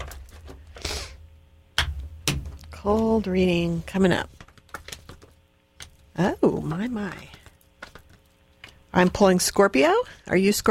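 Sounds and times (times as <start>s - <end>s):
low steady hum: 0.0s - 10.6s
speech: 2.8s - 4.4s, 6.2s - 7.3s, 8.9s - 10.6s
deck of reading cards shuffling: 3.0s - 8.9s.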